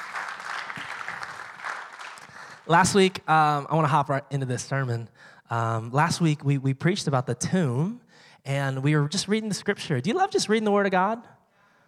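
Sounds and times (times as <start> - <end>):
church congregation applauding at a launch service: 0.0 - 2.7
speech: 2.7 - 11.4.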